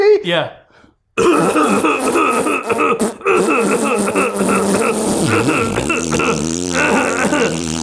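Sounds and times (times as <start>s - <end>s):
long loud buzzy fart: 1.2s - 7.8s
raspy cough-like throat sound: 1.2s - 7.8s.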